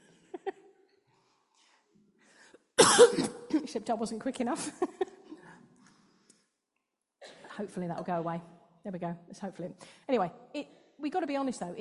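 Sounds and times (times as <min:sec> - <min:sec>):
person coughing: 0:02.8 - 0:03.8
speech: 0:03.0 - 0:05.0, 0:07.6 - 0:11.7.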